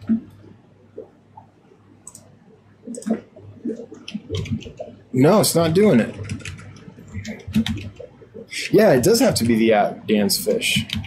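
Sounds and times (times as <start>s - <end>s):
low steady hum: 0.0s - 11.0s
typing on a computer keyboard: 4.0s - 4.9s, 6.0s - 8.2s, 10.7s - 11.0s
speech: 5.2s - 6.3s, 8.7s - 11.0s.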